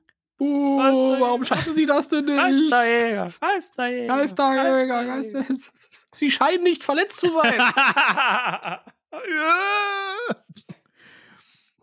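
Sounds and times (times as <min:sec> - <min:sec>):
speech: 0:00.4 - 0:10.4
laughter: 0:07.4 - 0:08.9
voice imitating a horrible high-pitched scream: 0:09.2 - 0:10.5.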